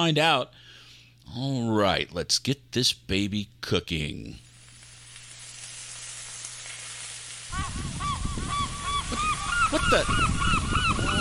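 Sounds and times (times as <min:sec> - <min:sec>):
speech: 0:00.0 - 0:00.6, 0:01.3 - 0:04.4, 0:09.7 - 0:10.6
flock of birds honking near a grill: 0:07.5 - 0:11.1.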